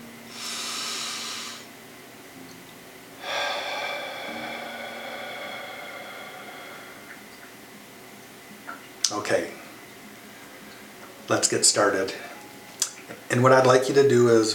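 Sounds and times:
faint low hum: 0:00.0 - 0:14.5
deep breaths during a guided energy-work exercise: 0:00.3 - 0:01.7, 0:03.2 - 0:07.6
speech: 0:09.1 - 0:09.6, 0:11.3 - 0:12.3, 0:13.1 - 0:14.5.

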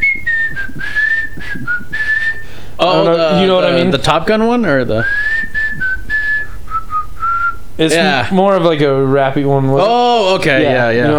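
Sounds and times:
person whistling a song's melody: 0:00.0 - 0:02.6, 0:05.0 - 0:07.6
speech: 0:02.8 - 0:05.2, 0:07.8 - 0:11.1.

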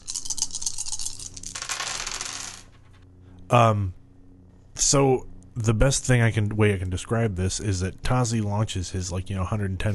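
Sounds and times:
dice rolling across a hard table: 0:00.0 - 0:03.0
speech: 0:03.5 - 0:04.0, 0:04.8 - 0:09.9.

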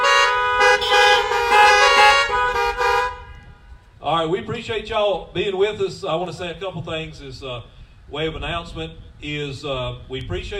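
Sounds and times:
car horns honking from people sitting in their cars: 0:00.0 - 0:03.9
speech: 0:04.2 - 0:10.5.

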